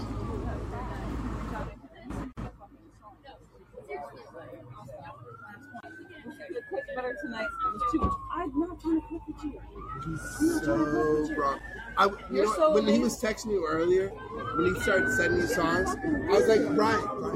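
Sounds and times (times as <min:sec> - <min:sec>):
chatter: 0:00.0 - 0:17.3
police siren wailing as it passes: 0:04.0 - 0:17.3
speech: 0:07.0 - 0:17.3.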